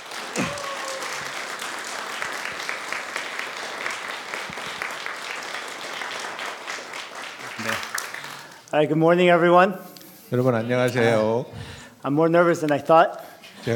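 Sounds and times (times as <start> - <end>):
church congregation applauding to welcome a visiting missionary speaker: 0.0 - 8.7
speech: 8.7 - 13.7.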